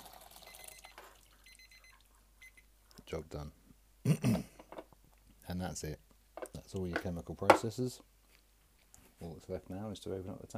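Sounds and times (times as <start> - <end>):
liquid pouring: 0.0 - 2.0
timer alarm high electronic beeps: 0.4 - 2.7
speech: 3.1 - 4.5, 5.5 - 6.0, 6.7 - 8.1, 9.2 - 10.5.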